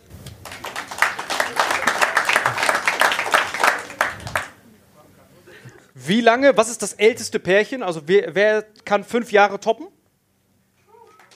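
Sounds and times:
couples in a live audience clapping: 0:00.2 - 0:04.6, 0:11.0 - 0:11.3
cheering voices in a live audience: 0:00.4 - 0:04.6, 0:10.9 - 0:11.3
speech: 0:06.1 - 0:10.0.

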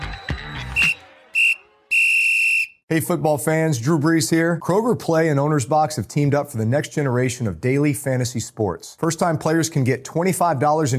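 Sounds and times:
short shrill whistle blasts: 0:00.0 - 0:02.8
speech: 0:02.9 - 0:10.9.

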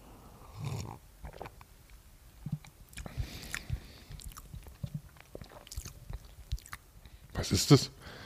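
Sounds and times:
person sipping a cocoa drink: 0:00.4 - 0:01.7, 0:02.4 - 0:06.8
swallowing gulps: 0:00.6 - 0:01.7, 0:02.4 - 0:06.8
wet mouth clicks: 0:02.4 - 0:06.8
speech: 0:07.4 - 0:08.0.

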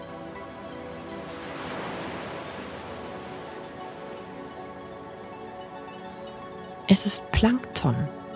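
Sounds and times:
ocean waves with bioluminescent plankton breaking on the shore: 0:00.2 - 0:05.3
speech: 0:06.9 - 0:08.2.

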